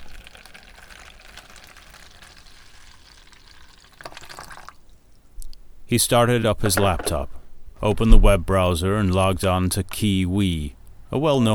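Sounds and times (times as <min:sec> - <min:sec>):
hot water pouring into a cup of instant ramen: 0:00.0 - 0:04.9
speech: 0:05.9 - 0:11.5.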